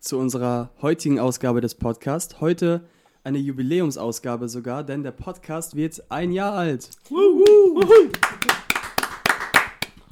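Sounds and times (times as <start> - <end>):
speech: 0.0 - 8.6
people cheering and whooping: 7.1 - 9.0
a few hosts clapping their hands: 7.4 - 10.1.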